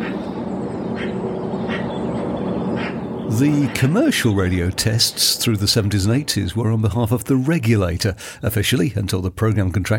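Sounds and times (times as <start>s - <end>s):
birds calling in a garden: 0.0s - 7.2s
steady outdoor hiss: 0.0s - 9.9s
speech: 3.4s - 9.9s.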